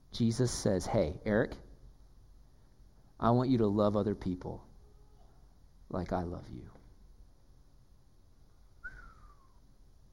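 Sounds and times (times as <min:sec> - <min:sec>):
hiss: 0:00.0 - 0:10.1
speech: 0:00.2 - 0:01.7, 0:03.2 - 0:04.7, 0:05.9 - 0:06.8
person whistling: 0:08.8 - 0:09.6.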